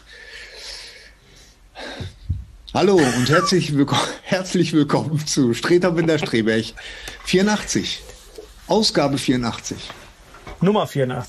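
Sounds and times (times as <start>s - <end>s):
deep breath: 0.0s - 2.4s, 6.8s - 7.3s
speech: 2.8s - 8.1s, 8.7s - 10.0s, 10.6s - 11.2s.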